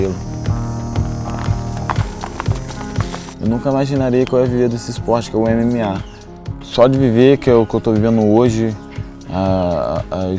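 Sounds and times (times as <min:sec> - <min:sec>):
speech: 0:00.0 - 0:00.3, 0:03.4 - 0:06.1, 0:06.7 - 0:10.3
horse hooves clip-clopping at a walking pace: 0:00.4 - 0:04.5.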